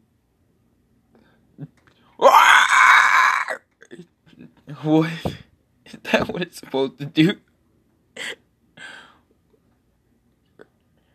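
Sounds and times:
dog screaming wail: 2.2 - 3.6
speech: 4.8 - 5.3, 6.1 - 7.5.

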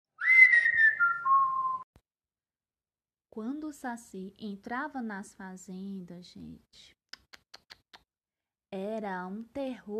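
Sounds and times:
eerie whistle sliding downward in pitch: 0.2 - 1.8
speech: 3.4 - 7.0, 8.7 - 9.9.

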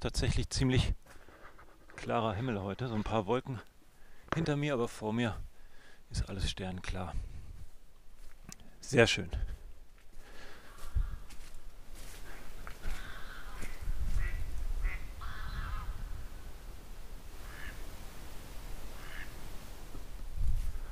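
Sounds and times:
speech: 0.0 - 1.2, 2.0 - 3.7, 4.3 - 5.5, 6.1 - 7.3, 8.8 - 9.5
ducks quacking by a lake at night in a conifer forest: 12.4 - 16.0, 17.4 - 17.8, 19.0 - 19.4
ambient hiss: 13.7 - 20.9.

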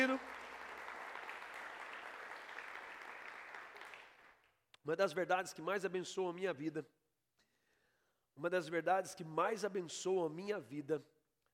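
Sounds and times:
congregation applauding: 0.0 - 4.5
speech: 4.8 - 7.0, 8.4 - 11.2.

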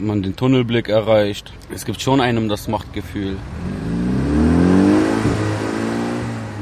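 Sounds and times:
speech: 0.0 - 3.8
car engine revving with loud modified exhaust: 3.0 - 6.5.

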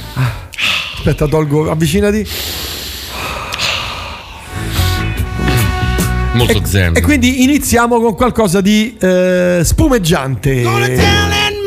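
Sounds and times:
deep breathing into the microphone: 0.0 - 1.1, 2.2 - 5.3
speech: 1.0 - 2.6, 6.4 - 11.3.

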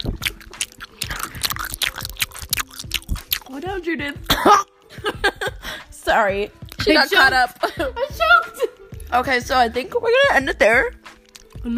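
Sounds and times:
person chewing food with crunchy bites and smacking: 0.0 - 3.6, 11.0 - 11.7
speech: 3.8 - 8.2, 9.1 - 11.0.

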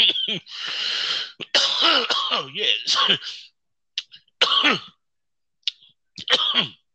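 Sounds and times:
speech: 0.0 - 1.0, 2.5 - 3.4, 4.4 - 4.9
person coughing harshly after smoking weed: 0.0 - 5.0, 6.2 - 6.9
sharp intake of breath: 0.5 - 1.4.

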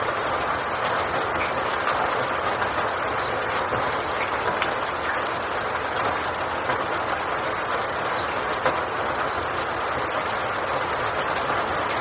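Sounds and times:
heavy rain: 0.0 - 11.9.

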